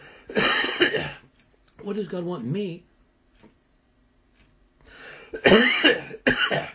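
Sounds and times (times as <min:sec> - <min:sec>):
person coughing: 0:00.3 - 0:01.2, 0:05.3 - 0:06.7
speech: 0:01.8 - 0:02.9, 0:05.4 - 0:06.7
faint breath: 0:04.8 - 0:05.4.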